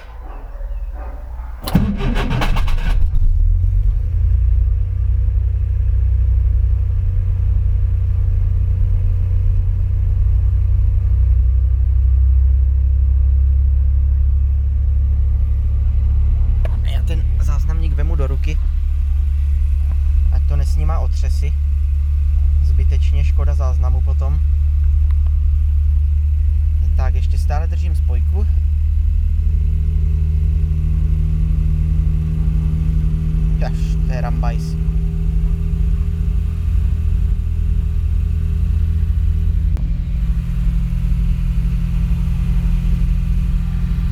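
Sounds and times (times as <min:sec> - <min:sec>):
carburetted car engine cranking with the clutch pressed: 0:00.0 - 0:03.7, 0:15.4 - 0:21.4, 0:26.2 - 0:44.0
carburetted car engine idling with a low rumble: 0:00.0 - 0:11.6, 0:12.4 - 0:44.0.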